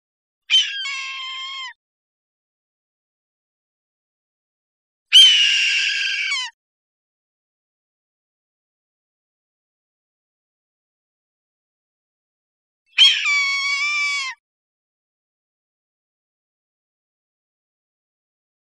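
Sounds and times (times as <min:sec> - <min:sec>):
red-tailed hawk screaming: 0:00.5 - 0:01.7, 0:05.1 - 0:06.6, 0:13.0 - 0:14.4.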